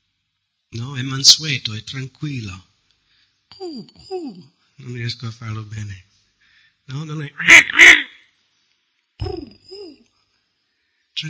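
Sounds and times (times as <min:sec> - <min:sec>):
speech: 0:01.0 - 0:02.7, 0:03.7 - 0:06.1, 0:06.9 - 0:08.0
person imitating a dove's cooing: 0:03.5 - 0:04.5, 0:07.4 - 0:08.1, 0:09.2 - 0:10.0.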